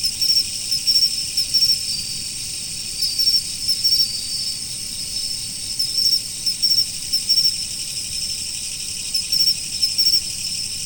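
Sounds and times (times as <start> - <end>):
autumn insect chorus: 0.0 - 10.8.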